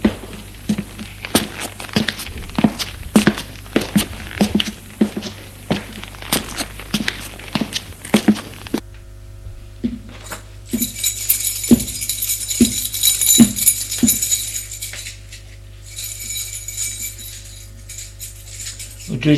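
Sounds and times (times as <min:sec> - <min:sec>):
footsteps climbing worn stone stairs in a run-down apartment building: 0:00.0 - 0:08.8, 0:09.8 - 0:15.2, 0:15.9 - 0:19.0
low steady hum: 0:00.0 - 0:19.3.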